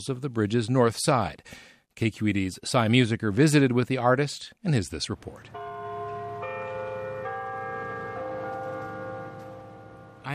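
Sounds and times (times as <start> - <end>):
speech: 0.0 - 5.8
clock tower bells ringing: 5.5 - 10.3.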